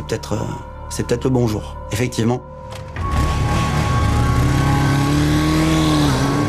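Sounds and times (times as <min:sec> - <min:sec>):
speech: 0:00.1 - 0:02.8
motorcycle engine revving and accelerating away at the foot of an apartment building: 0:03.0 - 0:06.4.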